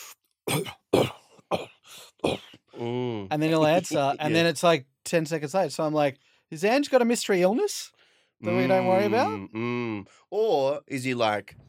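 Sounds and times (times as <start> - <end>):
person imitating short sharp coughs: 0.5 - 2.8
speech: 3.4 - 11.6.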